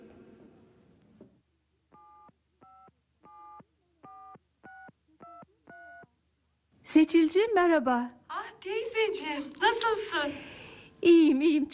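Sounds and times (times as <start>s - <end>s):
touch-tone beeps of a phone number being dialed: 2.0s - 6.1s
speech: 6.9s - 8.2s, 9.0s - 11.7s.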